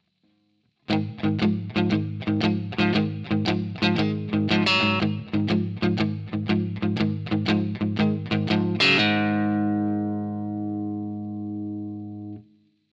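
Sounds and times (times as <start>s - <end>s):
palm-muted shuffle on blues guitar: 0.9s - 12.4s.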